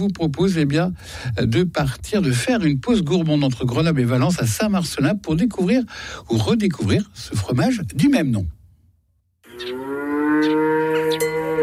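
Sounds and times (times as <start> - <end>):
speech: 0.0 - 8.6
dairy cow mooing on a family dairy farm: 9.4 - 11.6.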